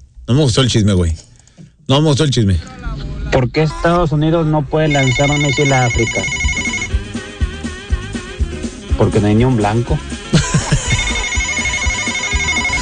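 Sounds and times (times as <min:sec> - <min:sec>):
speech: 0:00.3 - 0:01.3, 0:01.9 - 0:06.4, 0:09.0 - 0:10.5
phone electronic ringtone: 0:04.9 - 0:07.0, 0:10.7 - 0:12.7
laughter: 0:10.2 - 0:12.1.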